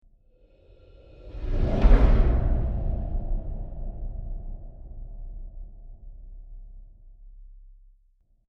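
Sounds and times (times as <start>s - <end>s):
deep breathy horror trailer whoosh impact: 0.4s - 6.6s.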